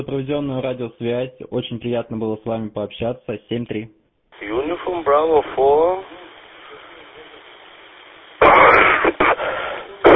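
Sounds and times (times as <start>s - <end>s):
speech: 0.0s - 6.2s
person clearing throat: 8.4s - 10.1s
person coughing: 8.4s - 10.1s.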